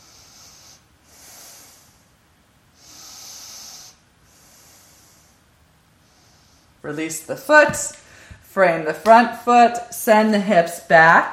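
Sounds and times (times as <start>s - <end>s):
slow deep breathing during a yoga stretch: 0.0s - 2.2s, 2.8s - 6.8s, 8.0s - 8.5s
speech: 6.8s - 8.0s, 8.6s - 11.3s.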